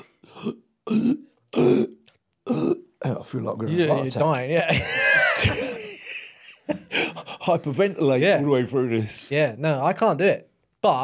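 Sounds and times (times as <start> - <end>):
person burping: 0.0 - 3.1
speech: 0.4 - 1.9, 3.1 - 5.8, 7.2 - 11.0
laughter: 4.6 - 8.3.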